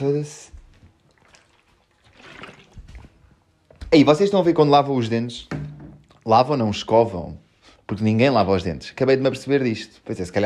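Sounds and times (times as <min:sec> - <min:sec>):
speech: 0:00.0 - 0:00.6, 0:03.9 - 0:05.6, 0:06.3 - 0:10.4
person sipping water: 0:01.0 - 0:03.4
swallow: 0:01.1 - 0:03.3.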